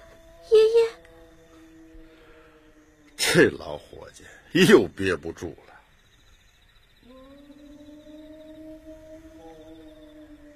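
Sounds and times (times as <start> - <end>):
person imitating a wolf howl: 0.0 - 3.8, 7.0 - 10.5
noise: 0.0 - 10.5
speech: 3.3 - 5.7.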